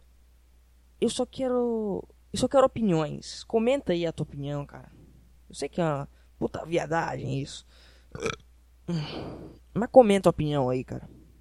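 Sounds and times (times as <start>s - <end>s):
speech: 1.0s - 11.2s
person burping into the microphone: 8.1s - 9.3s.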